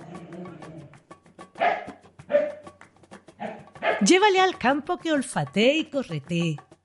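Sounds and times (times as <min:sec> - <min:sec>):
dog barking: 0:01.6 - 0:02.6, 0:03.4 - 0:04.1
speech: 0:04.0 - 0:06.7.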